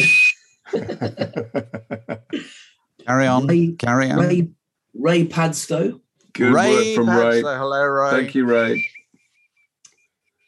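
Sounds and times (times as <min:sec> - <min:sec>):
short shrill piercing bosun's whistle blast: 0:00.0 - 0:00.6
rhythmic pulsing laughter: 0:00.7 - 0:02.6, 0:06.5 - 0:08.8
speech: 0:01.0 - 0:01.6, 0:03.1 - 0:09.0.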